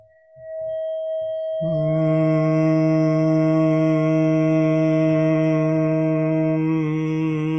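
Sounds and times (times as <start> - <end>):
639 hertz pure tone: 0.0 - 7.5.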